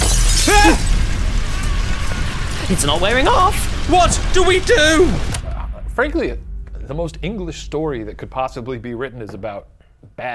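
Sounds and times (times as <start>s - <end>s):
glass window shattering as a bird breaks through: 0.0s - 5.3s
low hum: 1.9s - 10.3s
speech: 2.7s - 5.3s, 6.0s - 10.3s.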